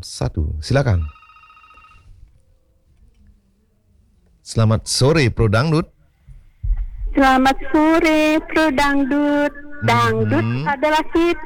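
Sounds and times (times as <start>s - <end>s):
speech: 0.0s - 1.2s, 4.5s - 6.0s, 7.1s - 11.4s
faint electronic tones: 0.8s - 2.1s
telephone ringing for an incoming call on a radio call-in line: 0.8s - 2.2s.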